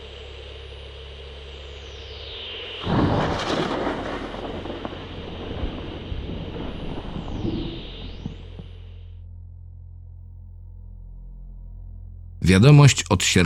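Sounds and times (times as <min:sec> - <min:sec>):
thunder from lightning striking overhead power lines: 0:02.8 - 0:08.8
speech: 0:12.5 - 0:13.4.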